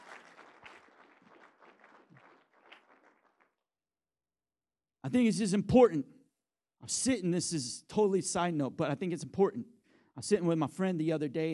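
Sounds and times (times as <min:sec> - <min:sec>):
audience applause: 0:00.0 - 0:03.5
speech: 0:05.0 - 0:06.2, 0:06.8 - 0:11.5.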